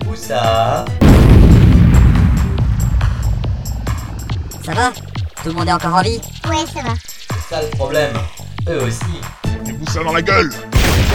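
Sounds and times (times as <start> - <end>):
speech: 0.1 - 1.1, 4.7 - 9.4, 10.0 - 10.7
grenade explosion in a video game: 1.0 - 4.7, 10.8 - 11.1.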